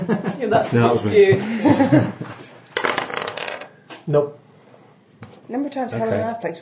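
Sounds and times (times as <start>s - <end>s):
speech: 0.1s - 2.3s, 4.1s - 4.4s, 5.5s - 6.5s
dice clattering and skittering across a hard floor: 2.8s - 3.8s.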